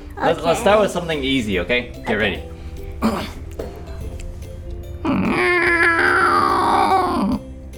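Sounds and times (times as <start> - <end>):
speech: 0.2 - 3.3
person imitating a cat's meow in an animal-sound guessing game: 5.0 - 7.4.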